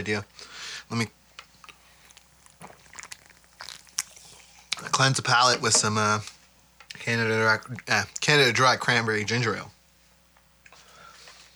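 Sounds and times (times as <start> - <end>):
speech: 0.0 - 1.2, 4.8 - 6.3, 7.0 - 9.8
person chewing toffee: 1.3 - 5.2.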